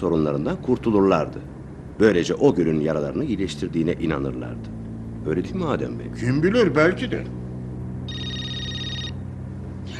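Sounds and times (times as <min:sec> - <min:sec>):
speech: 0:00.0 - 0:07.4
low constant hum: 0:00.0 - 0:09.9
mobile phone ringing: 0:08.1 - 0:09.2.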